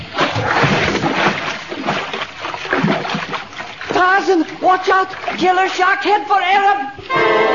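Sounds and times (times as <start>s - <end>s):
splash of a man diving into water from a boat: 0.0s - 3.9s
water churning and sloshing: 0.0s - 7.1s
speech: 4.0s - 7.4s.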